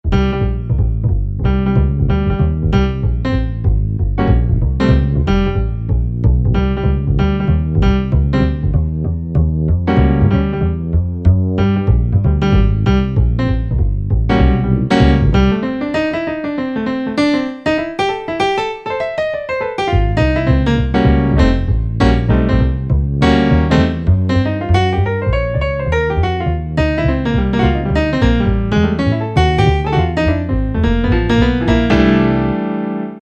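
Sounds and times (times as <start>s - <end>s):
bass piano on a Korg N364: 0.0s - 33.2s.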